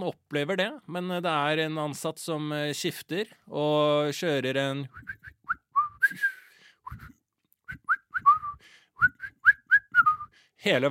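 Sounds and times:
speech: 0:00.0 - 0:05.4, 0:06.1 - 0:07.0, 0:10.6 - 0:10.8
hospital employee whistling a quick bouncy tune in a locker room: 0:04.9 - 0:10.4.

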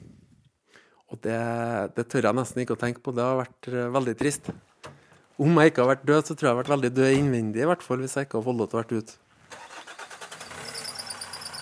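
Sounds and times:
speech: 0:01.1 - 0:04.7, 0:05.4 - 0:09.2
car engine cranking, starting and idling: 0:09.4 - 0:11.6.

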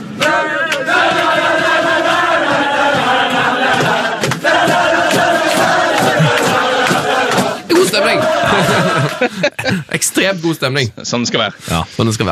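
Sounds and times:
football fans chanting on a bus to the Poland vs Northern Ireland match: 0:00.1 - 0:09.5
laughter: 0:05.5 - 0:10.2
speech: 0:09.2 - 0:12.3.

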